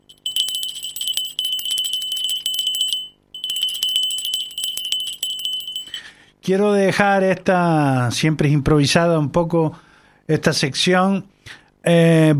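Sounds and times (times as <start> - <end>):
small bell ringing in a rapid trill: 0.0 - 6.2
speech: 6.4 - 12.3.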